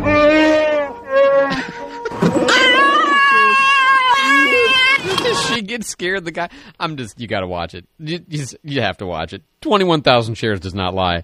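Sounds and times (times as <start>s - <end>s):
dog whining and howling like speech: 0.0s - 5.2s
speech: 5.8s - 11.2s.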